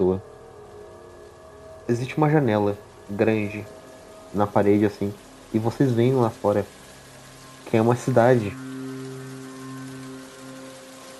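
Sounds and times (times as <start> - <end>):
speech: 0.0 - 0.3, 1.9 - 6.8, 7.7 - 8.6
low sustained droning hum: 0.0 - 11.1
rain pattering on hard surfaces in a city: 0.0 - 11.1.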